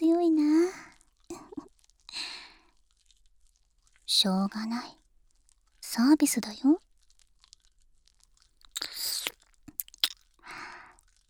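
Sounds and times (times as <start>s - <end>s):
speech: 4.1s - 5.0s, 5.9s - 6.9s
crunchy wet biting: 8.7s - 10.7s.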